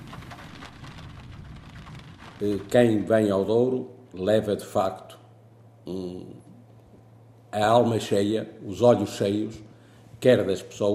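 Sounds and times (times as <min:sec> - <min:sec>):
rain pouring down on a surface: 0:00.0 - 0:03.5
speech: 0:02.4 - 0:05.2, 0:05.9 - 0:06.4, 0:07.5 - 0:10.9.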